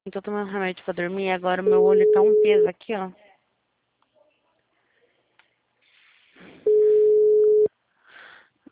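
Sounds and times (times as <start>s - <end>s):
speech: 0.0s - 3.2s
telephone ringback tone on an outgoing call: 1.7s - 2.7s, 6.7s - 7.7s
faint sounds: 3.1s - 7.7s.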